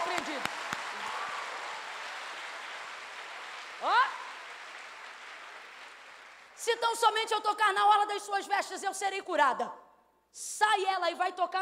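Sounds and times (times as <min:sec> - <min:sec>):
audience clapping steadily: 0:00.0 - 0:06.7
speech: 0:06.6 - 0:11.5.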